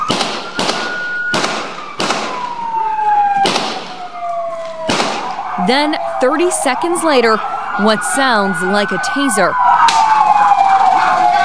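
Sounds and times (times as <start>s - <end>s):
gunshots during a police confrontation: 0.0s - 2.6s, 3.4s - 4.0s, 4.8s - 5.4s
steady siren-like tone falling in pitch: 0.0s - 11.4s
speech: 5.7s - 10.0s.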